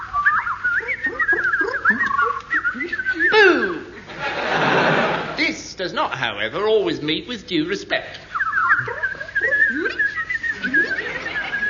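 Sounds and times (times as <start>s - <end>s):
voice mimicking a warbling alarm to scare off birds: 0.8s - 3.9s, 8.7s - 10.9s
laughter: 1.1s - 5.4s, 8.7s - 11.6s
speech: 5.8s - 8.2s.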